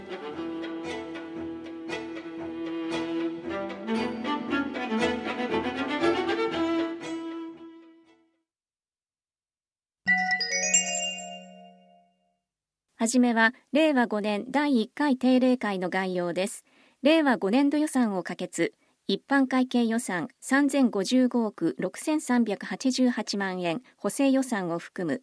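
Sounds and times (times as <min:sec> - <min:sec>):
instrumental music: 0:00.0 - 0:08.4, 0:10.1 - 0:12.3
electronic tone index marker chime: 0:10.1 - 0:12.4
speech: 0:13.0 - 0:25.2.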